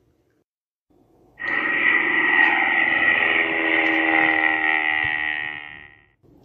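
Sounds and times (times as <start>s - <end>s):
airplane sound effect engine drone with bright whining tone: 1.2s - 6.2s.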